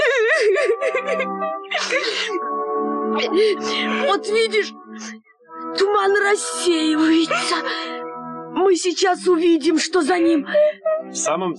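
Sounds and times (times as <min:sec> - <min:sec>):
girl crying with wavering wails, whimpers and sobbing: 0:00.0 - 0:02.5, 0:03.2 - 0:04.8, 0:06.9 - 0:08.0, 0:09.4 - 0:11.2
speech: 0:03.2 - 0:05.1, 0:05.9 - 0:08.0, 0:08.6 - 0:11.5.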